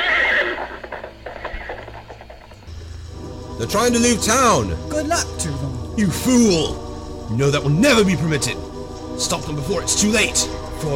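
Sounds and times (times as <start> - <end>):
horse whinnying: 0.0 - 2.0
low rumble: 2.2 - 10.9
speech: 3.6 - 10.9.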